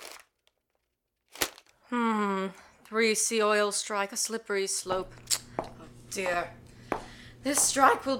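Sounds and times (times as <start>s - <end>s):
morning newspaper crinkling and rustling as it is shaken open: 0.0s - 1.7s
speech: 1.9s - 5.4s, 6.1s - 8.1s.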